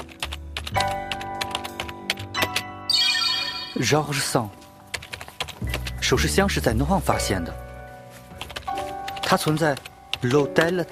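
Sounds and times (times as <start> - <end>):
rapid typing on a laptop keyboard: 0.0 - 2.7, 4.7 - 6.1, 8.2 - 10.9
speech: 3.8 - 4.6, 5.6 - 7.6, 9.3 - 10.9.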